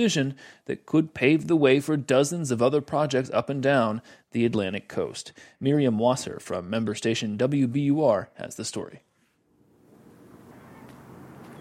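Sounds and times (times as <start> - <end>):
speech: 0.0 - 9.1
wind blowing across an open concrete marine terminal on a harbor: 9.6 - 11.6.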